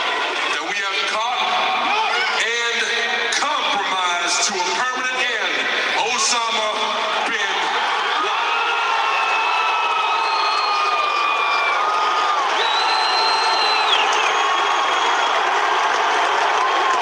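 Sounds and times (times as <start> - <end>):
crowd booing and cheering at a presidential announcement: 0.0 - 17.0
shrill whistles from a crowd: 9.2 - 11.9, 12.5 - 15.5.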